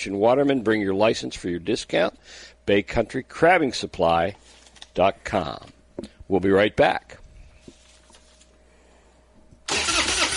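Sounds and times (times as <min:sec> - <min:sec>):
speech: 0:00.0 - 0:07.2
truck engine cranking without catching: 0:09.7 - 0:10.3.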